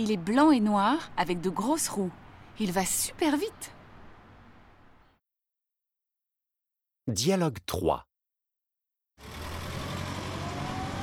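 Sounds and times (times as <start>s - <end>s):
speech: 0.0s - 3.8s, 7.1s - 8.1s
bus engine rumbling as the bus drives away: 0.0s - 5.0s, 9.2s - 11.0s
road noise of bus driving away: 0.0s - 5.2s, 9.2s - 11.0s.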